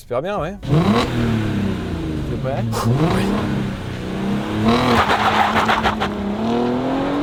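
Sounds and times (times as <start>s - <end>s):
speech: 0.0s - 1.5s, 2.4s - 3.7s, 4.6s - 6.9s
Porsche Cayenne SUV engine roaring through a hard launch-control start: 0.4s - 7.2s.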